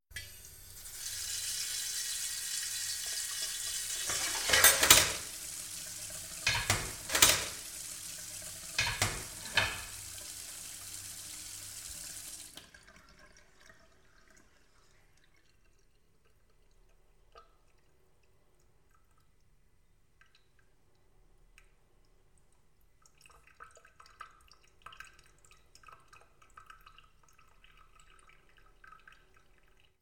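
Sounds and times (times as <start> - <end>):
kitchen dishes clattering: 4.0 - 5.4, 6.4 - 7.7, 8.8 - 10.0.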